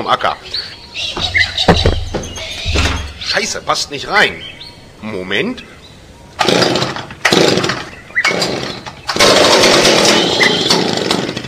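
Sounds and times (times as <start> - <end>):
speech: 0.0 - 1.4, 3.3 - 5.7
chainsaw revving: 6.4 - 11.4.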